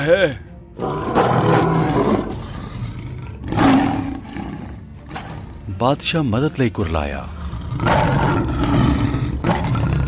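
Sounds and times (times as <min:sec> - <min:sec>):
speech: 0:00.0 - 0:02.1, 0:05.8 - 0:08.6
lion roaring: 0:00.8 - 0:05.6, 0:07.4 - 0:10.0.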